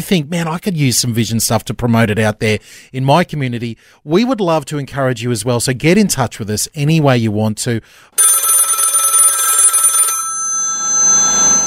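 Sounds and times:
speech: 0:00.0 - 0:08.3
old-style telephone bell ringing with a rapid metallic trill: 0:08.2 - 0:11.6.

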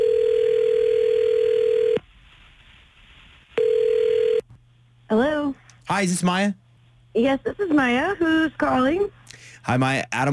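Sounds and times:
phone line ringback tone of an outgoing call: 0:00.0 - 0:02.0, 0:03.6 - 0:04.4
speech: 0:05.9 - 0:06.6, 0:07.2 - 0:10.3.

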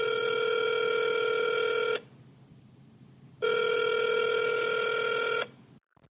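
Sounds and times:
telephone ringing with an electronic trill: 0:00.0 - 0:02.0, 0:03.4 - 0:05.5.

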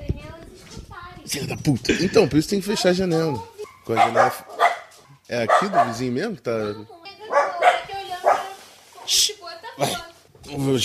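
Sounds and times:
speech: 0:01.3 - 0:04.6, 0:05.3 - 0:07.0, 0:09.8 - 0:10.8
dog barking with sharp yaps: 0:03.6 - 0:06.1, 0:07.3 - 0:09.2.

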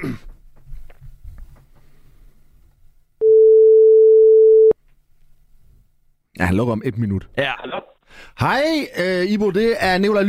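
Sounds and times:
speech: 0:00.0 - 0:00.3, 0:06.4 - 0:10.2
telephone ringing tone while placing a call: 0:03.2 - 0:04.8.

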